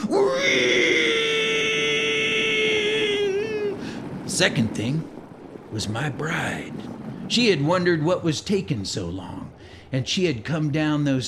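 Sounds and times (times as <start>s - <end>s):
eerie howling wail: 0.0s - 4.2s
speech: 4.4s - 11.2s.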